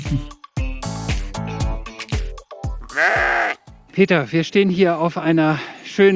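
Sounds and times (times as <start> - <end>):
speech: 0.1 - 0.4, 4.0 - 6.1
flock of sheep bleating: 2.8 - 3.7.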